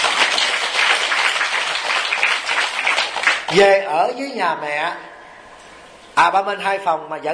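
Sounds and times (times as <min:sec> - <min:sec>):
crowd applauding: 0:00.0 - 0:03.6
speech: 0:03.5 - 0:05.1, 0:06.2 - 0:07.3.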